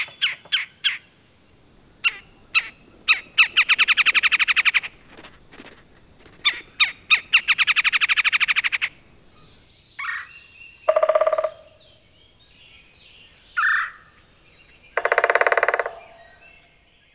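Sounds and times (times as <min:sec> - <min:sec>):
red-bellied woodpecker uttering rolling burry churrs and rough notes: 0:00.0 - 0:10.3, 0:10.9 - 0:12.1, 0:14.7 - 0:16.6.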